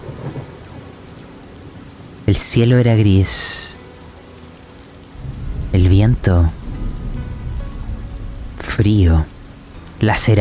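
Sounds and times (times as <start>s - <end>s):
low rumble of thunder: 0.0s - 1.1s, 5.2s - 10.3s
rain falling steadily: 0.0s - 10.3s
speech: 2.4s - 3.8s, 5.9s - 6.6s, 8.8s - 9.3s, 10.0s - 10.3s.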